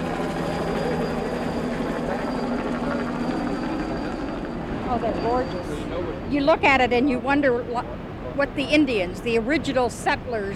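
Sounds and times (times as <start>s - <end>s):
sightseeing helicopter engine and rotor drone: 0.0s - 7.8s
speech: 4.9s - 10.5s.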